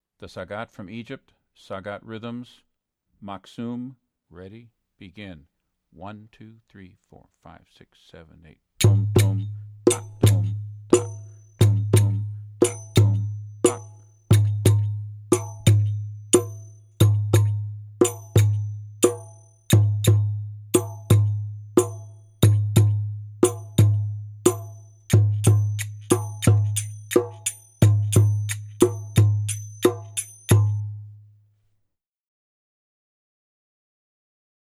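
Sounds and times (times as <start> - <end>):
maqsoum drum rhythm: 8.8 - 31.3.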